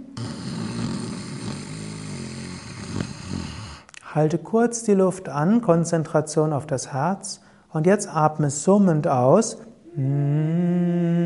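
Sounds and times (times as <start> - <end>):
rough snoring-style inhalation in breathing exercise: 0.0 - 4.0
speech: 4.2 - 11.2.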